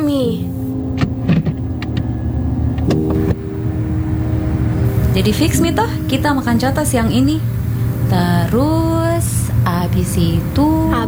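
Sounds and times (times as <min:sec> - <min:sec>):
arriving car engine humming: 0:00.0 - 0:11.0
mechanical clicks and thumps: 0:01.0 - 0:02.1
speech: 0:05.2 - 0:11.0.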